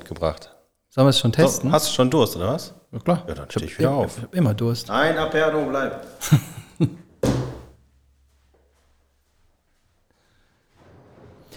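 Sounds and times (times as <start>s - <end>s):
speech: 0.1s - 7.0s
laughter: 3.0s - 7.2s
faint rustling: 4.9s - 11.5s
refrigerator door shutting with a heavy thunk: 7.2s - 7.8s.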